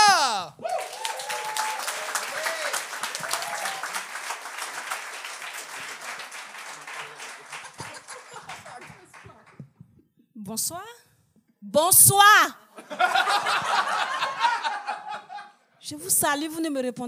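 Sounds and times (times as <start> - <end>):
laughter: 0.0 - 0.5, 6.9 - 9.0, 12.8 - 15.6
faint cheers: 0.0 - 4.0
crowd applause: 0.0 - 9.6
speech: 10.5 - 11.0, 11.6 - 14.2, 15.9 - 17.0.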